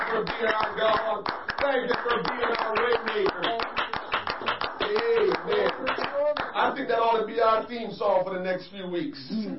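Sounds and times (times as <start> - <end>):
crowd clapping hands in a steady quick rhythm: 0.0 - 7.2
speech: 0.1 - 3.8, 6.6 - 9.5.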